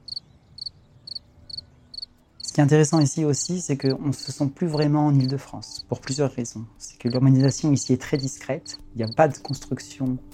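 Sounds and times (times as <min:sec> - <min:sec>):
cricket chirping in quick high trills: 0:00.0 - 0:03.0, 0:03.8 - 0:05.3
speech: 0:02.6 - 0:10.3.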